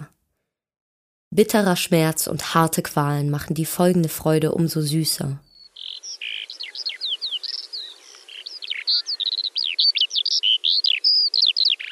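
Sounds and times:
speech: 0:01.3 - 0:05.5
lark singing: 0:04.9 - 0:11.8.

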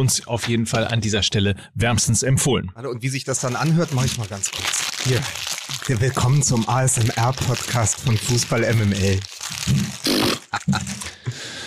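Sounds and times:
speech: 0:00.0 - 0:09.8, 0:10.8 - 0:11.0
paper being crumpled up, dry crackling and crinkling: 0:03.3 - 0:11.2
laughter: 0:10.4 - 0:11.2.

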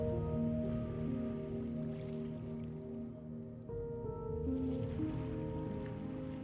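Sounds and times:
ocean surf rolling onto a shore: 0:00.0 - 0:03.2, 0:04.3 - 0:06.4
sustained ambient musical drone: 0:00.0 - 0:06.4.

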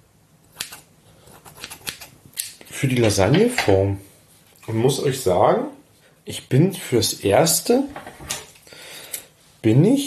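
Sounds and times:
kitchen scissors cutting pasta: 0:00.6 - 0:02.1
speech: 0:02.8 - 0:04.1, 0:04.7 - 0:08.4, 0:09.6 - 0:10.0.

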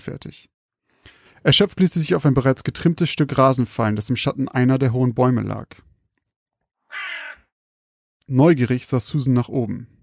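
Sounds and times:
speech: 0:00.0 - 0:05.9, 0:08.3 - 0:10.0
raven cawing: 0:06.9 - 0:07.5.

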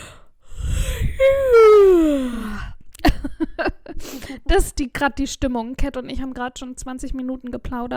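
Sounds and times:
tired person yawning: 0:00.6 - 0:02.7
speech: 0:04.5 - 0:07.9.

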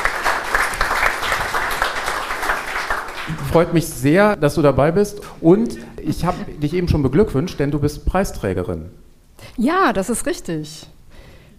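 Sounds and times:
audience applause welcoming a guest: 0:00.0 - 0:03.8
speech: 0:03.3 - 0:10.9.

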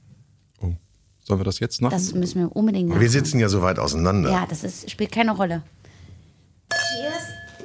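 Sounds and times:
speech: 0:00.6 - 0:05.8
wine glasses clinking in a toast: 0:06.7 - 0:07.6.

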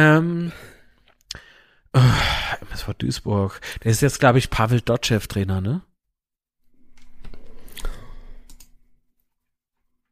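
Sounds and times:
speech: 0:00.0 - 0:00.7, 0:02.0 - 0:05.9
computer mouse clicking: 0:06.9 - 0:08.8.

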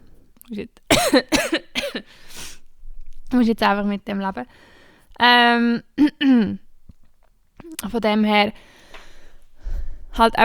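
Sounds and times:
speech: 0:00.5 - 0:02.4, 0:03.3 - 0:06.6, 0:07.7 - 0:08.8, 0:10.2 - 0:10.4
person clearing throat: 0:00.9 - 0:02.1
person coughing: 0:00.9 - 0:02.1.

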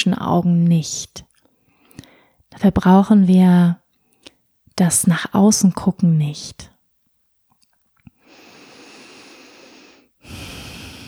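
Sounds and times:
speech: 0:00.0 - 0:01.3, 0:02.6 - 0:03.8, 0:04.8 - 0:06.7
relaxed breathing in and out: 0:01.6 - 0:02.4, 0:08.2 - 0:11.0.

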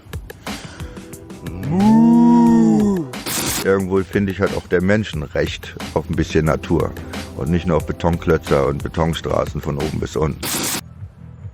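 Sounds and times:
person imitating a cow with a long moo: 0:01.4 - 0:03.2
speech: 0:03.6 - 0:10.8.

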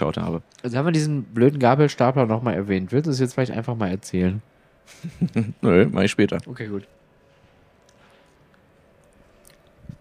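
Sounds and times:
speech: 0:00.0 - 0:07.0
two people chewing food: 0:07.8 - 0:09.9.

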